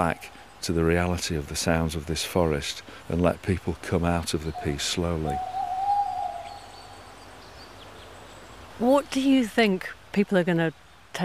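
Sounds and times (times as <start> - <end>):
speech: 0.0 - 5.6, 8.8 - 11.2
tawny owl hooting: 4.4 - 7.1.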